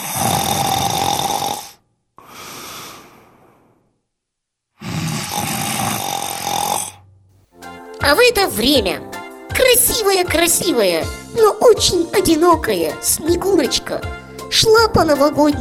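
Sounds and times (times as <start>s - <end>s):
loud rasping snoring: 0.0s - 4.0s, 4.8s - 7.1s
speech: 8.1s - 15.5s.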